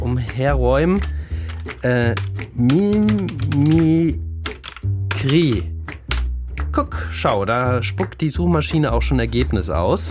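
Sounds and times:
speech: 0.2s - 4.2s, 5.2s - 5.7s, 6.8s - 10.0s
typing on a computer keyboard: 1.0s - 5.6s.

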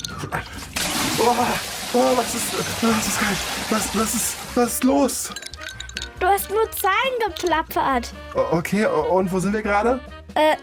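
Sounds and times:
cold shower water spraying and splashing: 0.4s - 5.3s
speech: 1.3s - 5.5s, 6.2s - 10.6s.

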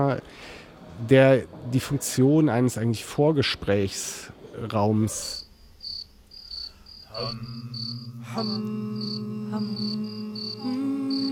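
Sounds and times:
speech: 0.0s - 5.4s, 7.2s - 10.8s
faint rapid cricket-like chirps: 4.7s - 11.3s
group of people humming low sustained tones: 7.1s - 11.3s.

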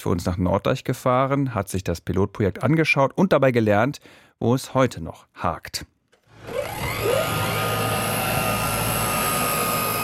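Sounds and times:
speech: 0.0s - 5.9s
delivery drone rotors spinning up and whining at airfield: 6.3s - 10.0s.

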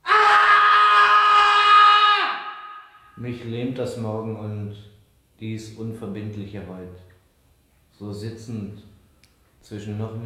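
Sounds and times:
man screaming at night: 0.0s - 3.2s
speech: 3.2s - 7.1s, 8.0s - 8.9s, 9.6s - 10.2s.

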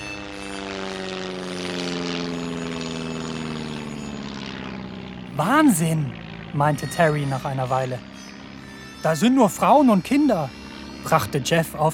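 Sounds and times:
propeller airplane droning overhead: 0.0s - 11.9s
speech: 5.4s - 8.1s, 9.0s - 11.9s.

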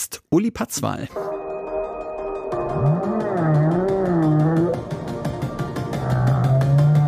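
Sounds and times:
speech: 0.0s - 1.3s
electronic music track with synthetic pulse and sustained tones: 1.2s - 7.0s
humpback whale song: 2.6s - 4.9s, 6.0s - 7.0s.

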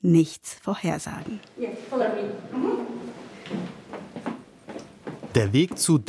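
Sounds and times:
speech: 0.0s - 2.3s, 5.4s - 6.0s
footsteps on wooden floor in a theatre in Riga: 1.1s - 6.0s
wooden floorboards creaking in a theatre in Riga: 2.7s - 5.9s.

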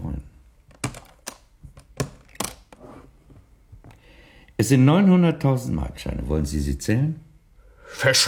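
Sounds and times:
suitcase being handled and unfastened with clicks and knocks: 0.7s - 2.8s
speech: 4.6s - 7.3s, 7.9s - 8.2s.

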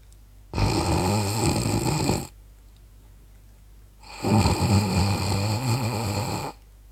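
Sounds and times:
sleeping woman snoring softly through the nose: 0.5s - 2.3s, 4.0s - 6.6s.

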